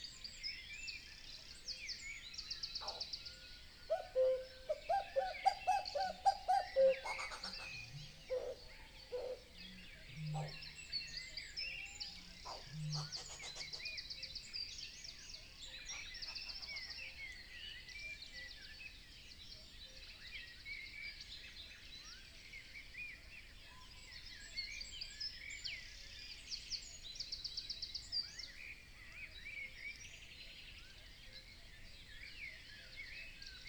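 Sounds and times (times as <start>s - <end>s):
dawn chorus of birds in a European wetland: 0.0s - 33.6s
cuckoo calling: 3.9s - 7.6s.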